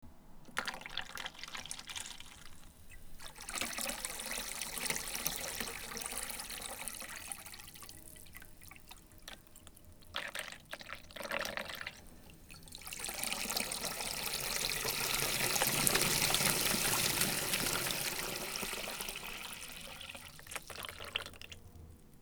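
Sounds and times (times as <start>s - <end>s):
water in a mug in a sink: 0.5s - 22.2s.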